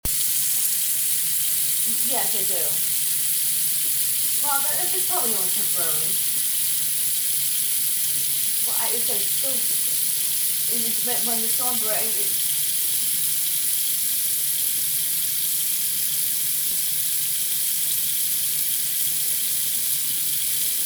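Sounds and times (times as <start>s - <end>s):
sink running: 0.0s - 20.8s
woman talking on phone: 1.9s - 2.9s, 4.4s - 6.2s, 8.6s - 10.0s, 10.7s - 12.4s.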